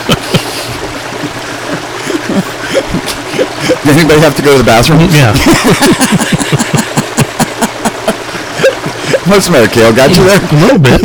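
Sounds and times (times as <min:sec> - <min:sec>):
laughter: 0:00.0 - 0:04.2, 0:05.2 - 0:10.5
water slapping against the hull of a drifting boat while fishing for trout: 0:00.0 - 0:11.0
speech: 0:03.8 - 0:06.8, 0:09.3 - 0:11.0.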